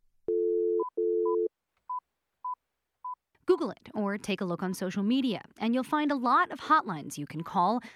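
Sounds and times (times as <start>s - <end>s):
telephone dial tone: 0.3s - 1.5s
speech: 3.6s - 7.9s.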